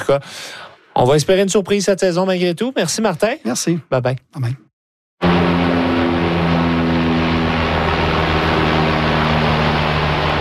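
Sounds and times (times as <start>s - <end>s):
speech: 0.0s - 4.6s
Canadair water bomber propeller aircraft flying overhead: 5.2s - 10.3s.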